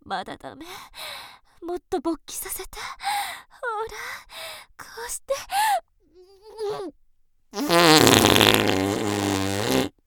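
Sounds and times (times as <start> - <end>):
speech: 0.1 - 5.8, 6.6 - 9.1
fart: 7.6 - 10.0.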